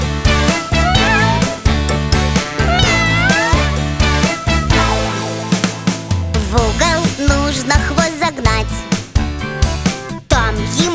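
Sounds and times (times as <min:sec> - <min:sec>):
loud backing music with a driving beat: 0:00.0 - 0:10.9
cat meowing: 0:00.5 - 0:01.9, 0:02.5 - 0:03.8.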